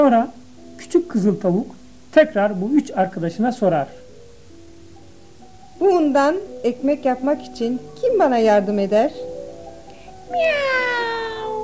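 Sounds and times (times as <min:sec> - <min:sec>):
speech: 0:00.0 - 0:04.0, 0:05.8 - 0:09.2, 0:10.3 - 0:10.9
cat meowing: 0:10.3 - 0:11.6.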